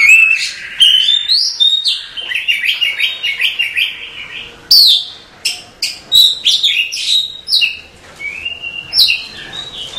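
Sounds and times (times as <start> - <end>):
Oriental magpie-robin singing: 0.0 - 9.9.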